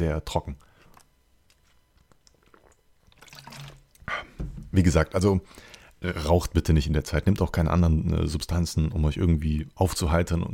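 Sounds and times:
speech: 0.0 - 0.7, 4.7 - 10.5
sipping water: 2.0 - 4.4
gulp and swallow: 2.1 - 4.4.

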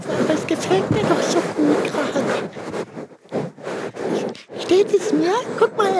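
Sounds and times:
stiff tulle fabric of a dress rustling: 0.0 - 5.9
speech: 0.3 - 1.4, 4.7 - 5.9.

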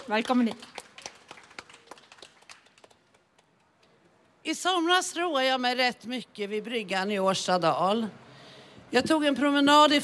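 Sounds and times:
small crowd applauding: 0.0 - 3.2
speech: 0.1 - 0.8, 4.4 - 8.2, 8.9 - 10.0.

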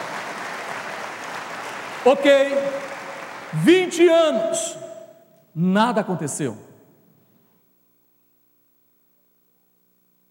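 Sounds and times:
audience applause: 0.0 - 4.8
speech: 2.0 - 2.9, 3.5 - 4.9, 5.6 - 6.7.

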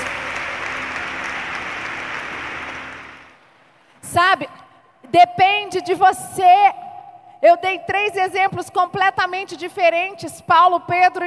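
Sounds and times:
audience applause: 0.0 - 3.7
speech: 4.1 - 6.8, 7.4 - 11.2.

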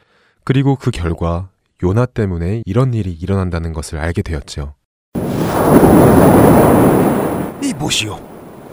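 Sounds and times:
speech: 0.5 - 4.8, 5.4 - 8.3
rolling thunder from a storm at sea: 5.2 - 8.7.

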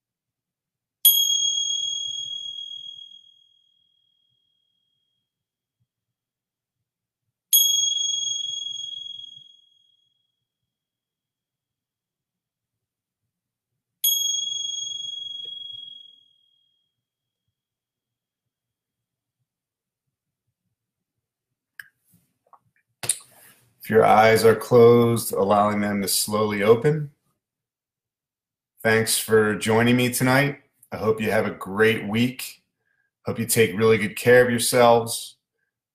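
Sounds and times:
mindfulness bell ringing at the close of a guided practice: 1.1 - 3.3, 14.0 - 16.3
speech: 23.8 - 27.2, 28.8 - 32.6, 33.2 - 35.4.

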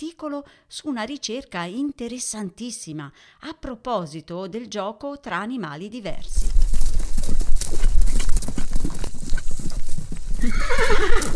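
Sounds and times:
speech: 0.0 - 6.6
horse hooves clip-clopping at a walking pace: 6.1 - 11.3
loud wavering horse whinny: 10.4 - 11.3.

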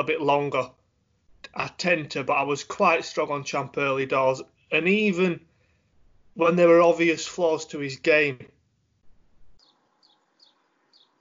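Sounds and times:
speech: 0.0 - 0.8, 1.5 - 5.5, 6.4 - 8.6
soft hiss: 0.0 - 11.2
bird tweeting outdoors: 9.3 - 11.2.

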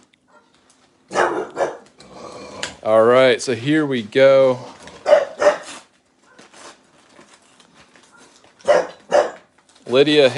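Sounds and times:
dog barking: 0.3 - 0.5, 1.1 - 1.9, 5.0 - 6.4, 8.1 - 9.5
speech: 2.8 - 4.7, 9.9 - 10.3
quiet shuffling: 4.0 - 10.3.

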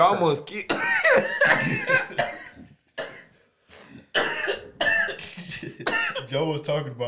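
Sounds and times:
speech: 0.0 - 2.3, 6.3 - 7.0
person coughing hard in raspy bursts: 0.7 - 3.3, 3.9 - 6.3.

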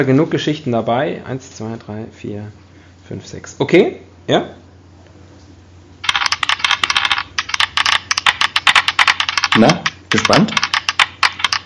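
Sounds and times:
speech: 0.0 - 4.6, 9.6 - 10.7
dice rolling on a hard table: 6.0 - 11.6.

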